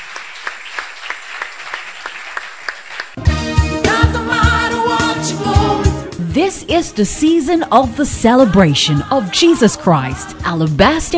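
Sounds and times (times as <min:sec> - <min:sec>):
audience clapping hands in a steady rhythm: 0:00.0 - 0:03.3
loud music with heavy bass: 0:03.2 - 0:06.8
speech: 0:06.4 - 0:11.1.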